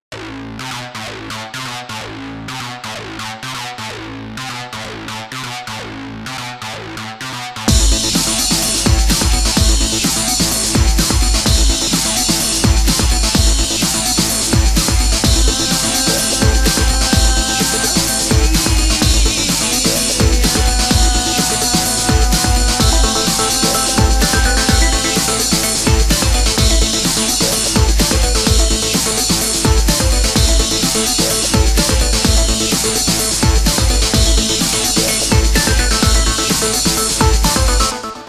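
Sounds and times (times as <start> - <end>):
breakbeat drums: 7.7 - 38.2.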